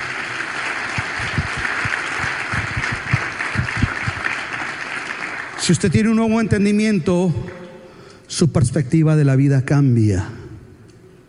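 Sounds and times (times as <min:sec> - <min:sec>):
crowd applauding: 0:00.0 - 0:05.6
speech: 0:05.6 - 0:07.6, 0:08.3 - 0:10.4.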